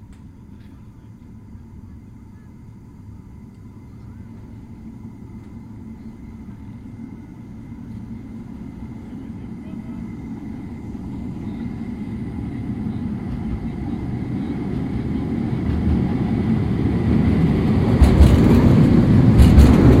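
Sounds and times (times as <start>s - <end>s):
faint steady whines of a metro train: 0.0s - 19.9s
metro train approaching: 0.0s - 19.9s.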